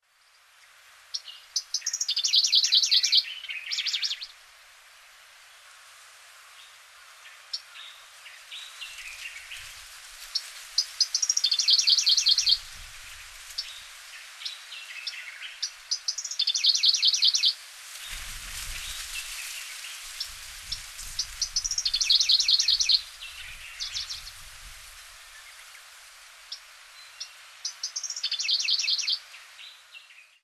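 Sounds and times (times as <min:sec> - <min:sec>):
Middendorff's grasshopper warbler singing on Rishiri: 0:01.2 - 0:04.3, 0:10.4 - 0:12.7, 0:14.4 - 0:17.6, 0:18.7 - 0:24.4, 0:26.5 - 0:30.4.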